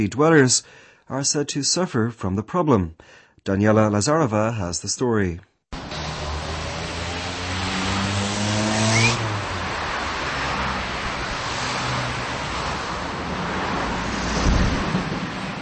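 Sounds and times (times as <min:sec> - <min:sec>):
speech: 0:00.0 - 0:05.5
traffic on a busy highway through a city centre in the Czech Republic: 0:05.8 - 0:15.6.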